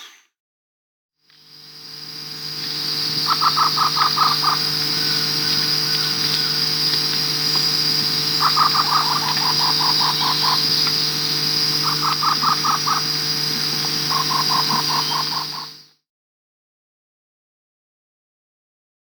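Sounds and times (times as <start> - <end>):
Black-tailed Trogon Trogon melanurus in Peru: 2.5 - 15.7.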